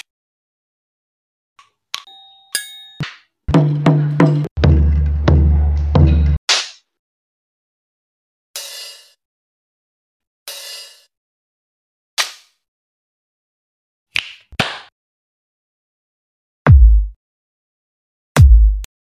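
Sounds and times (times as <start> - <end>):
drummer playing drums: 3.5 - 6.4, 16.7 - 17.2, 18.4 - 18.9.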